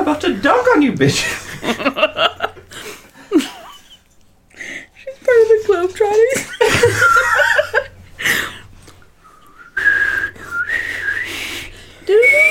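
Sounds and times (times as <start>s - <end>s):
speech: 0.1s - 2.4s
laughter: 1.2s - 4.1s, 6.2s - 8.5s
person attempting to whistle: 9.4s - 11.4s, 12.1s - 12.5s.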